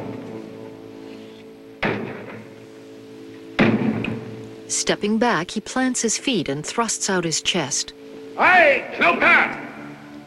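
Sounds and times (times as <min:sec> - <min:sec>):
slender cannon barrel pounding on a carved wooden double door: 0:01.8 - 0:02.5, 0:03.6 - 0:04.3
speech: 0:04.7 - 0:09.7.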